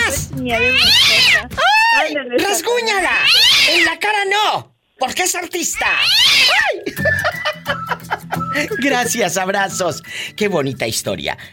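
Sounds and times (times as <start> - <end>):
person imitating cat meows: 0.0 - 2.2, 5.8 - 6.8
speech: 0.4 - 1.6, 2.2 - 11.5
laughter: 6.6 - 8.8.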